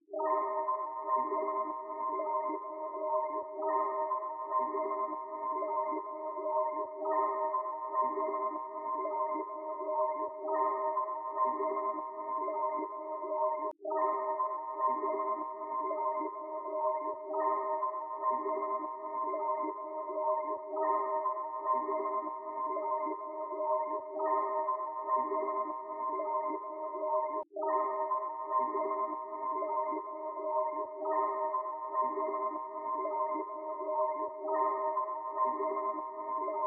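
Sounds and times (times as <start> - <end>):
ambient texture melody loop in C minor: 0.2 - 36.6.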